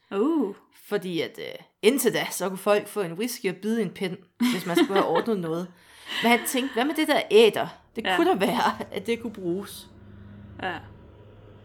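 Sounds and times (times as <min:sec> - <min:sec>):
speech: 0:00.1 - 0:09.9, 0:10.6 - 0:10.9
tractor engine rumbling outside: 0:08.0 - 0:11.6.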